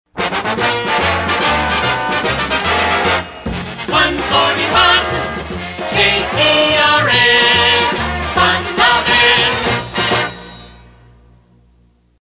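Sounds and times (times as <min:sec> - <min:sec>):
trombones: 0:00.1 - 0:11.0
vocals: 0:03.9 - 0:10.3.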